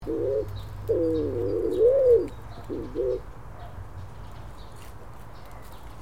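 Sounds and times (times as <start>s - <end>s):
stock dove giving low hollow coos: 0.0s - 3.3s.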